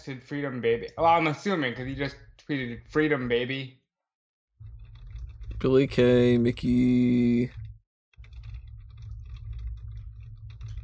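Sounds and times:
speech: 0.0s - 3.8s, 5.6s - 7.6s
typing on a computer keyboard: 4.7s - 5.8s, 7.5s - 10.8s.

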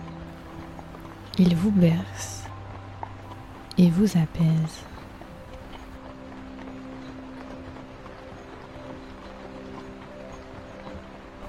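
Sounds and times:
broadband noise: 0.0s - 11.4s
horse hooves clip-clopping: 0.0s - 11.4s
speech: 1.4s - 2.4s, 3.8s - 4.9s.

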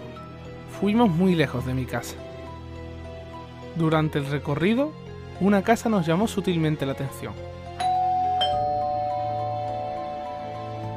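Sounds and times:
speech: 0.8s - 2.3s, 3.8s - 7.6s
two-note ding-dong doorbell chime: 7.8s - 10.8s.

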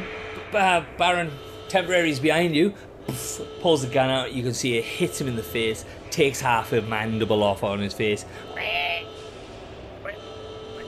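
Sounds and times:
speech: 0.5s - 8.8s
voice imitating a pig-like squeal: 8.6s - 9.1s.

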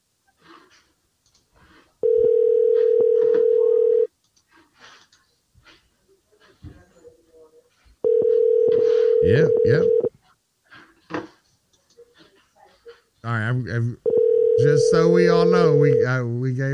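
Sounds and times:
telephone ringback tone of an outgoing call: 2.0s - 4.1s, 8.0s - 10.1s, 14.0s - 16.2s
people talking quietly: 2.8s - 16.7s
speech: 14.6s - 16.7s.

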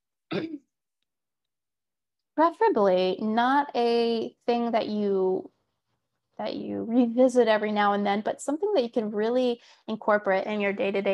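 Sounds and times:
throat clearing: 0.3s - 0.6s
speech: 0.4s - 0.6s, 2.4s - 5.6s, 6.4s - 11.1s.

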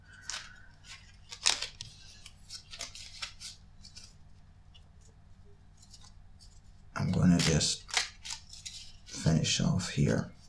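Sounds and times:
deck of tarot cards being shuffled: 0.2s - 4.2s, 5.8s - 9.4s
speech: 7.5s - 7.9s, 9.4s - 10.4s.

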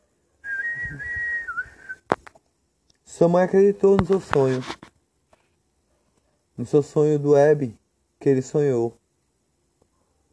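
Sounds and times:
person whistling imitating birdsong: 0.4s - 2.1s
speech: 3.2s - 4.8s, 6.6s - 9.0s.

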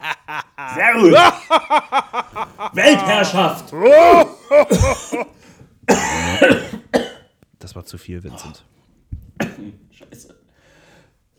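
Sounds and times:
laughter: 0.0s - 5.3s
harsh raspy dry coughing: 0.0s - 7.4s, 9.4s - 9.8s
speech: 0.7s - 5.0s, 8.1s - 8.8s.

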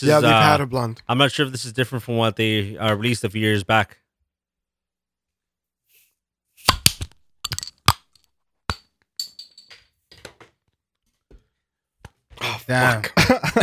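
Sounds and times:
speech: 0.0s - 4.0s, 12.7s - 13.6s
glasses of blonde beer clinking together in a toast: 7.5s - 8.0s, 9.2s - 9.7s.

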